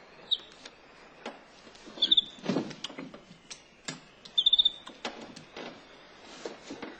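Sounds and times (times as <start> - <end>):
small bird chirping: 0.0 - 0.8, 1.8 - 5.0.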